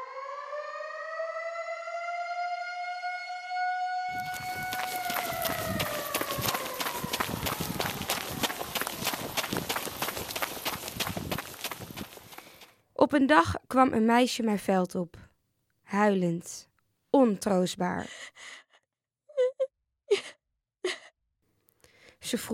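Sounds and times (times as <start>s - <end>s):
air raid siren wailing in 1940: 0.0s - 10.9s
many hurried footsteps of frightened people running home: 4.2s - 12.7s
speech: 13.2s - 15.2s, 15.9s - 18.6s, 22.3s - 22.5s.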